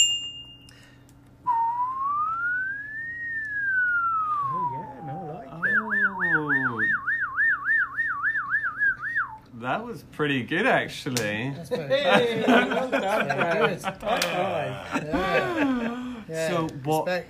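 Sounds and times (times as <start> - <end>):
faint hum: 0.0 - 17.2
person whistling an imitation of an ambulance siren: 1.4 - 9.5
laughter: 4.3 - 6.8, 11.6 - 16.3
speech: 9.7 - 17.2.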